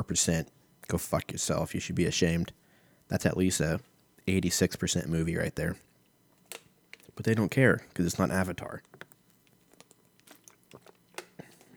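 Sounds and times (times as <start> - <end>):
speech: 0.0 - 5.9, 7.2 - 9.0
plastic bottle crinkling: 6.4 - 7.3, 8.8 - 11.7
person sipping water from a plastic bottle: 6.5 - 11.7.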